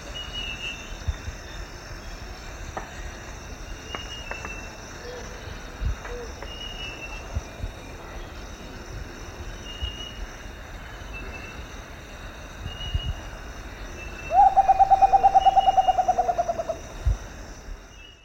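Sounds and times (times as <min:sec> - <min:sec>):
insects buzzing: 0:00.0 - 0:18.2
Rufous potoo calling in the eastern lowlands of South America: 0:14.3 - 0:16.9.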